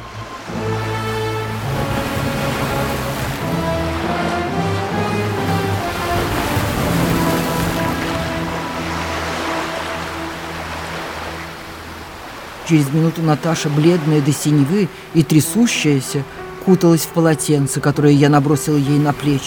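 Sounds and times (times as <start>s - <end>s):
steady sustained musical drone: 0.0s - 14.0s
rough stormy sea surf crashing on the shore: 0.0s - 19.4s
speech: 12.7s - 19.4s.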